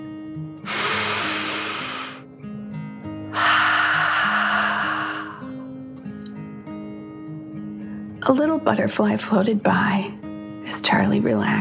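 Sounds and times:
soft steady meditation music bed: 0:00.0 - 0:11.5
slow deep breath in and out during a children's guided meditation: 0:00.7 - 0:02.2, 0:03.3 - 0:05.7
speech: 0:08.2 - 0:10.2, 0:10.9 - 0:11.5.

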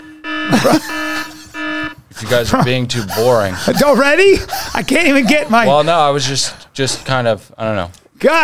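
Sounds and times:
loud steady electronic buzzer alarm sound effect: 0:00.0 - 0:04.2
laughter: 0:00.4 - 0:06.6
speech: 0:00.6 - 0:01.0, 0:02.2 - 0:08.4.

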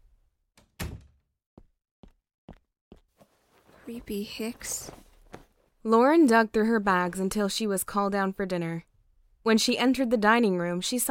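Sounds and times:
door swinging shut with a solid thud: 0:00.6 - 0:01.2
speech: 0:03.9 - 0:05.0, 0:05.8 - 0:11.0.

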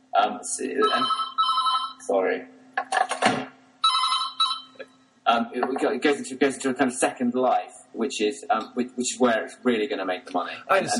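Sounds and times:
speech: 0:00.2 - 0:01.4, 0:02.1 - 0:02.6, 0:05.3 - 0:10.9
telephone ringing in electronic bursts: 0:00.8 - 0:02.0, 0:03.8 - 0:04.9.

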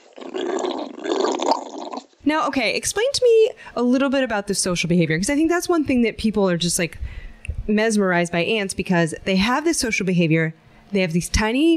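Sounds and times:
dog growling angrily: 0:00.0 - 0:02.2
speech: 0:02.3 - 0:11.7.

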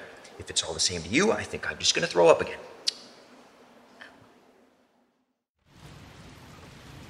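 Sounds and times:
speech: 0:00.4 - 0:02.8
rain pattering on a tent: 0:05.6 - 0:07.0.

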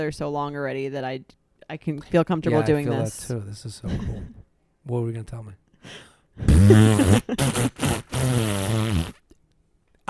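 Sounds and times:
speech: 0:00.0 - 0:09.2
loud buzzing fart: 0:06.5 - 0:09.2.

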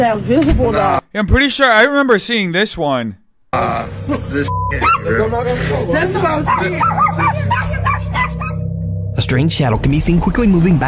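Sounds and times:
speech: 0:00.0 - 0:07.6, 0:09.2 - 0:10.8
steady low hum: 0:03.6 - 0:10.8
two upset puppies yipping and whimpering in a home: 0:04.8 - 0:05.1, 0:06.4 - 0:08.6.

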